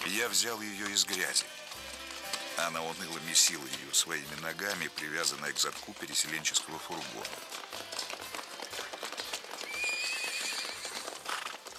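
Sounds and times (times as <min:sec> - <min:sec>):
hooves clopping: 0:00.0 - 0:11.7
speech: 0:00.2 - 0:02.0, 0:02.6 - 0:08.1
mare whinnying: 0:09.6 - 0:11.6.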